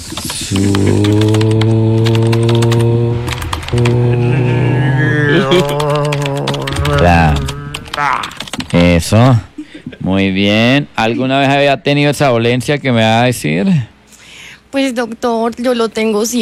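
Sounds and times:
doctor typing on a computer keyboard during a patient consultation: 0:00.0 - 0:04.0, 0:05.6 - 0:08.8
laughter: 0:00.4 - 0:02.2, 0:03.0 - 0:08.4, 0:09.2 - 0:10.2
loud sustained droning hum: 0:00.4 - 0:14.1
speech: 0:00.5 - 0:01.4, 0:09.1 - 0:09.5, 0:10.1 - 0:13.9, 0:14.7 - 0:16.3.

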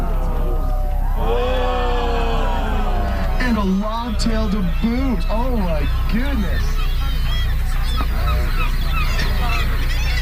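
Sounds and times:
steady low rumble: 0:00.0 - 0:10.2
honking goose-like bird calls at a breeding colony: 0:02.9 - 0:10.2
speech: 0:03.6 - 0:06.8.

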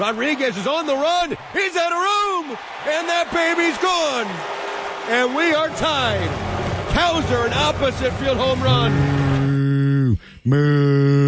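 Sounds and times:
speech: 0:00.0 - 0:09.2, 0:10.4 - 0:11.2
cow moo played during a baseball game after a home run: 0:08.7 - 0:09.7.

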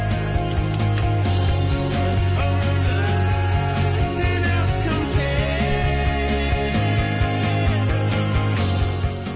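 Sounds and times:
2000s pop rock song: 0:00.0 - 0:09.3.

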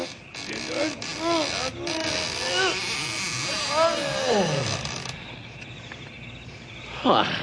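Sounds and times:
heavy old doors creaking and groaning open: 0:00.0 - 0:05.5
steady hiss: 0:00.0 - 0:07.4.

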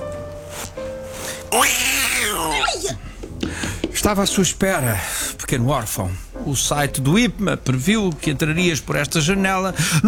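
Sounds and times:
cat meowing long and drawn-out: 0:01.5 - 0:03.0
speech: 0:01.5 - 0:03.1, 0:04.0 - 0:10.0.

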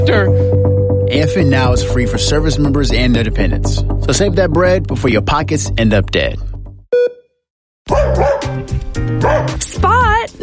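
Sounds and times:
speech: 0:00.0 - 0:06.5
dog barking: 0:07.9 - 0:09.6.

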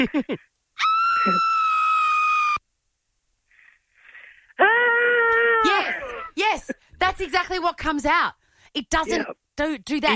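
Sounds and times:
speech: 0:00.0 - 0:00.5, 0:01.2 - 0:01.5, 0:06.5 - 0:10.1
recorded high-pitched scream: 0:00.8 - 0:02.7, 0:04.6 - 0:06.3.

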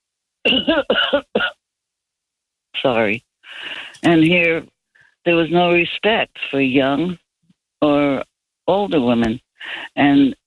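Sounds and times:
speech: 0:00.5 - 0:01.5, 0:02.8 - 0:07.2, 0:07.8 - 0:10.4
person coughing: 0:00.5 - 0:01.6.

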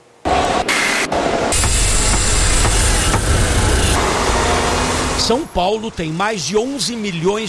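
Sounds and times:
vehicles passing: 0:00.2 - 0:07.4
busy city traffic engine rumble: 0:01.5 - 0:07.4
speech: 0:05.3 - 0:07.4.

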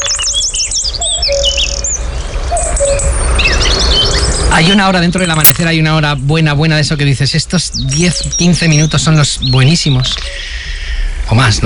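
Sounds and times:
cuckoo singing at dawn: 0:00.0 - 0:05.6, 0:07.7 - 0:10.7
robin singing at dawn: 0:00.0 - 0:11.5
dawn chorus of birds: 0:00.0 - 0:11.6
speech: 0:04.6 - 0:10.7, 0:11.3 - 0:11.6.

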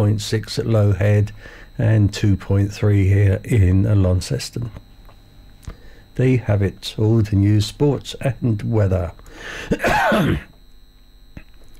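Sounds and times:
speech: 0:00.0 - 0:04.8, 0:06.2 - 0:10.5
harsh cough: 0:09.6 - 0:10.6.

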